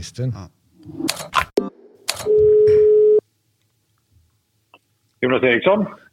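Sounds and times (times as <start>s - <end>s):
speech: 0.0s - 1.4s, 5.2s - 6.1s
steady telephone ringing tone: 2.3s - 3.2s.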